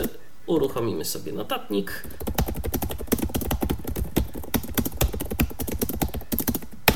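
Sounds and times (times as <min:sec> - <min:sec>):
speech: 0:00.5 - 0:02.5
rapid typing on laptop keyboard: 0:02.0 - 0:06.9.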